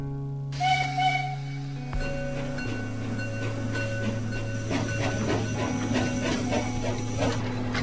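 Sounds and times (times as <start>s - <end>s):
steam train whistle: 0.6s - 2.8s, 4.7s - 7.5s
departing steam train wheels rattling and clanking: 1.0s - 7.8s.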